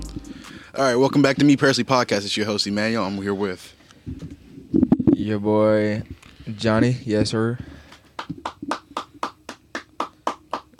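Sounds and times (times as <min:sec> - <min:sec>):
speech: 0:00.8 - 0:04.3, 0:05.2 - 0:07.7
sharp hand claps: 0:07.9 - 0:10.7.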